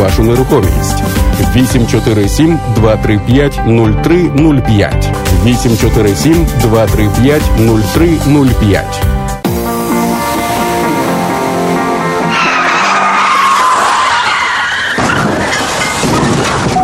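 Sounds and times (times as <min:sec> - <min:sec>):
speech: 0:00.1 - 0:09.1
car tires screeching in an accident skid: 0:10.4 - 0:16.7.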